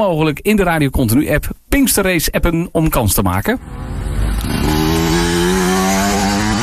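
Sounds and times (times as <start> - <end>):
speech: 0.0 - 5.0
motocross motorcycle engine revving: 3.6 - 6.6.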